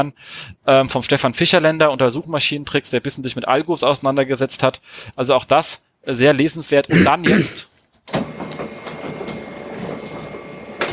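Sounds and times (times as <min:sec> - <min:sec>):
speech: 0:00.0 - 0:08.3
very loud mechanical printer whirring and clattering: 0:08.1 - 0:10.9.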